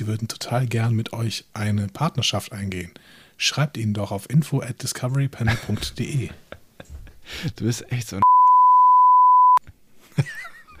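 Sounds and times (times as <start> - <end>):
speech: 0.0 - 6.5, 7.3 - 8.2
laughter: 5.5 - 7.6, 10.1 - 10.7
censor bleep masking a swear word: 8.2 - 9.6.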